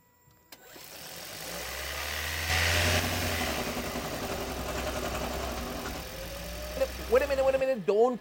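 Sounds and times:
hybrid car combustion engine starting and idling with a rattle: 0.6 - 8.1
speech: 7.1 - 8.1.

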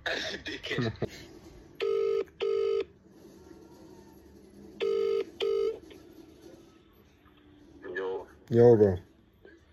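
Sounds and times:
speech: 0.1 - 1.4, 8.5 - 9.1
phone line double-burst ringback tones: 1.8 - 2.9, 4.8 - 5.8.

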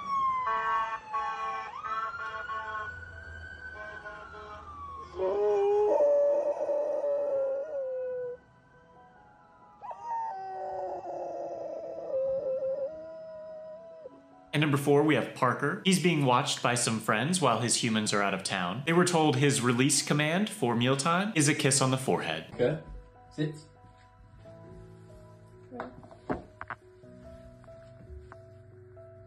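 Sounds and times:
wailing ambulance siren: 0.0 - 15.2
dog howling in long wavering cries: 5.0 - 8.4, 9.8 - 14.2
speech: 14.6 - 23.7.

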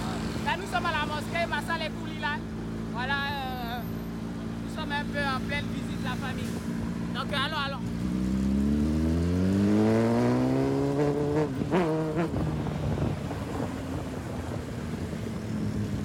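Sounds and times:
dense continuous traffic noise in Dakar: 0.0 - 16.0
speech: 0.6 - 4.0, 4.8 - 8.2, 9.8 - 10.3
motorcycle engine revving through its gears: 4.5 - 16.0.

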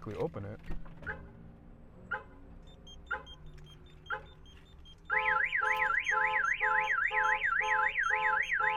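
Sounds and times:
truck alarm short chirps: 2.6 - 8.7
truck alarm siren warbling up and down: 3.8 - 8.7.

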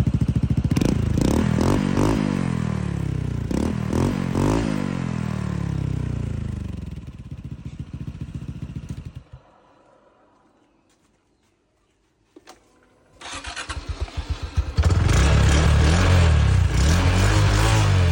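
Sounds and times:
motorcycle engine revving through stock exhaust with two silencer plugs: 0.0 - 9.6, 13.2 - 18.0.

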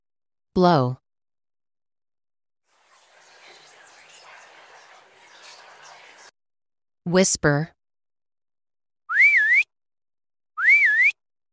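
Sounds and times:
speech: 0.6 - 1.0, 7.1 - 7.8
person whistling: 9.1 - 9.7, 10.6 - 11.2.

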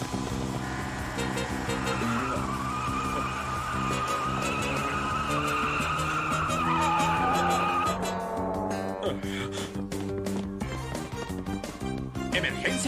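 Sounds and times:
stolen car tires screeching: 0.0 - 10.2
stolen car engine roaring off: 0.0 - 10.6
busy layer of music or noise: 0.0 - 12.1.

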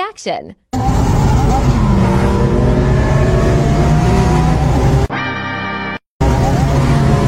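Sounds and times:
speech: 0.2 - 0.7
car engine revving from device plugged into OBD port: 0.8 - 5.1, 6.2 - 7.2.

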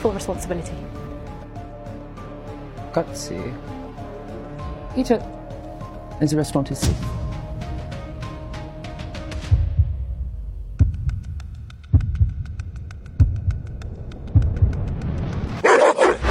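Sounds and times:
speech: 0.0 - 1.0, 2.9 - 3.8, 5.0 - 5.4, 6.2 - 7.2
steady slow rhythmic thumping: 6.9 - 15.1
dog barking excitedly: 15.6 - 16.2.

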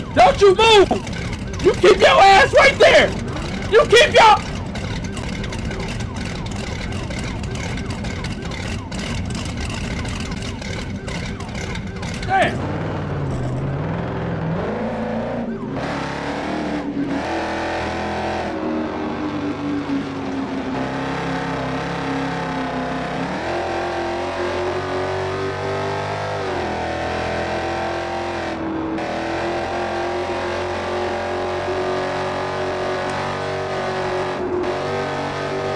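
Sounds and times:
car engine roaring as the vehicle speeds away: 0.0 - 35.7
speech: 0.2 - 4.5.

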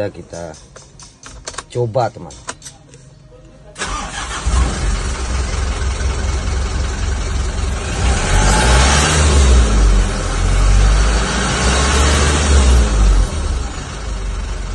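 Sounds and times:
speech: 0.0 - 0.9, 1.7 - 2.5
rough-sounding engine revving after a repair: 3.8 - 14.7.

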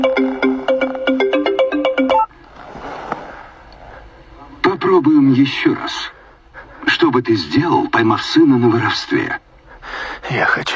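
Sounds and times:
phone ringtone for an incoming call: 0.0 - 2.3
faint noise: 0.0 - 10.7
speech: 5.4 - 6.2, 6.9 - 10.7.

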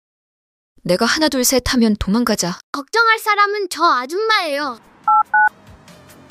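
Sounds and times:
speech: 0.8 - 5.4
touch-tone beeps of a phone number being dialed: 5.1 - 5.5.

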